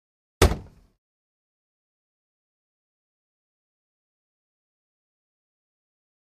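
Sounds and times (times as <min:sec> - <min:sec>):
fishing boat hatch: 0:00.4 - 0:00.8.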